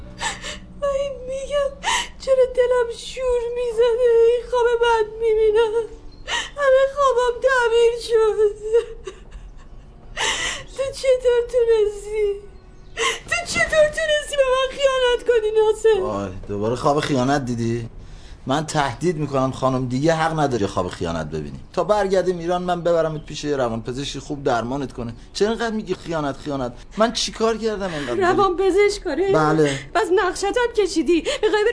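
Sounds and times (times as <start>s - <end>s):
woman crying and whimpering in high-pitched moans: 0.1s - 2.8s, 3.8s - 15.8s, 27.9s - 30.1s, 31.1s - 31.7s
speech: 1.3s - 6.0s, 6.6s - 9.0s, 10.9s - 31.7s
woman's sharp breathy gasps: 27.9s - 28.3s.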